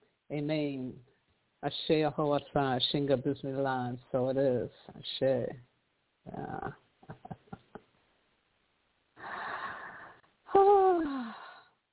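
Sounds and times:
speech: 0.3s - 7.3s
deep breath with voiced sigh: 9.2s - 11.8s.

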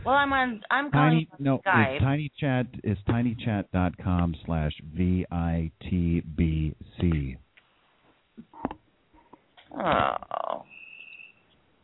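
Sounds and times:
speech: 0.0s - 7.4s, 9.7s - 10.7s
frog croaking: 9.6s - 11.3s.

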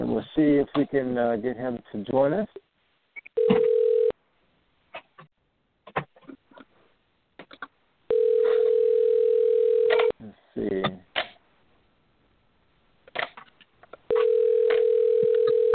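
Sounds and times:
speech: 0.2s - 2.7s, 10.2s - 11.0s
phone line ringback tones: 3.4s - 4.2s, 8.1s - 10.1s, 14.1s - 15.7s.

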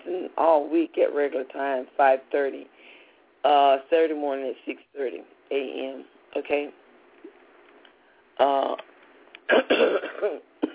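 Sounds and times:
speech: 0.4s - 6.8s, 8.4s - 8.9s, 9.5s - 10.5s
person clearing throat: 9.5s - 10.7s
raspy coughs: 9.5s - 10.7s.

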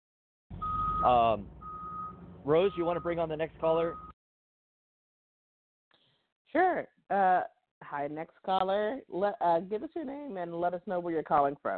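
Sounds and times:
truck reversing beeps: 0.5s - 4.2s
low truck engine rumble: 0.6s - 4.0s
speech: 1.0s - 1.6s, 2.4s - 4.1s, 6.5s - 11.7s.

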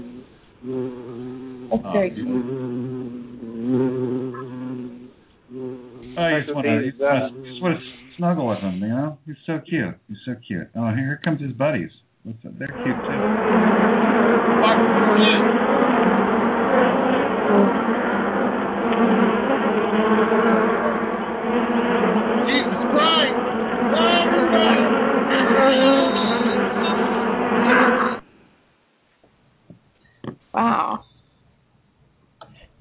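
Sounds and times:
many bees buzzing in a studio: 0.0s - 8.0s, 12.7s - 28.2s
speech: 1.7s - 2.8s, 6.4s - 18.0s.

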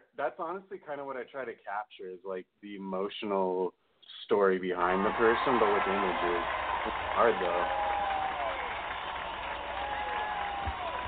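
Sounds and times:
speech: 0.2s - 7.8s
crowd clapping: 4.8s - 11.0s.

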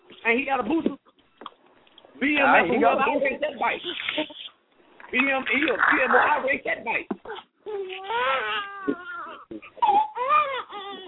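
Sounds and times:
speech: 0.2s - 1.0s, 2.2s - 4.4s, 5.1s - 11.0s
newborn baby boy wailing: 7.2s - 11.0s.

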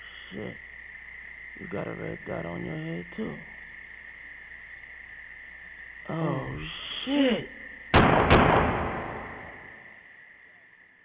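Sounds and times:
speech: 0.3s - 0.7s, 1.6s - 3.6s, 6.1s - 7.6s
loud gunshots fired at an intruder at a door: 8.0s - 9.8s.

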